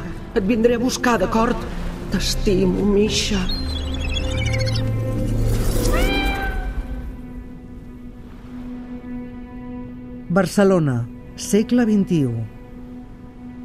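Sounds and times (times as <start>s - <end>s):
speech: 0.4s - 3.7s, 10.3s - 12.6s
faint chirps: 3.4s - 6.8s
cat meowing: 5.9s - 7.0s.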